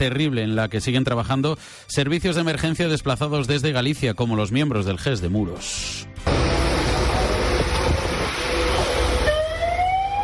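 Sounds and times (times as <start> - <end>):
speech: 0.0 - 6.4
cranes and heavy machinery pulling cars out of compacted mud in a ravine: 6.2 - 9.3.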